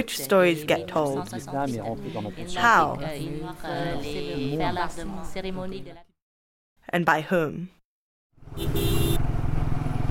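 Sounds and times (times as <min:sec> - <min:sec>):
speech: 0:00.0 - 0:06.1, 0:06.9 - 0:07.8, 0:08.5 - 0:09.1
motorbike engine starting and running: 0:08.4 - 0:10.0.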